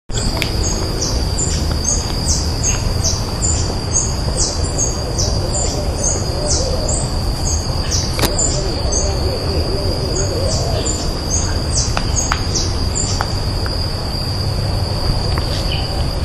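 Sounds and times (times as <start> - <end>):
Poospiza cabanisi calling: 0.1 - 16.2.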